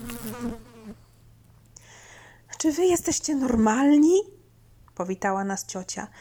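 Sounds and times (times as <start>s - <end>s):
loud buzzing of biting insects with wavering pitch: 0.0s - 1.1s
thin high hiss: 0.0s - 2.0s
speech: 0.3s - 1.0s, 2.6s - 4.4s, 5.0s - 6.1s.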